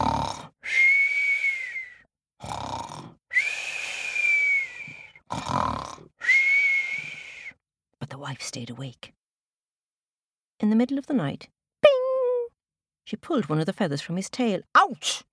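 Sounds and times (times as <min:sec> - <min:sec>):
voice imitating a sleeping griffin snoring: 0:00.0 - 0:00.6, 0:02.4 - 0:04.2, 0:04.9 - 0:06.1
long steady high whistle imitated by a voice: 0:00.7 - 0:02.1, 0:03.4 - 0:05.1, 0:06.2 - 0:07.6
speech: 0:08.3 - 0:09.1, 0:10.6 - 0:11.6, 0:13.1 - 0:15.3.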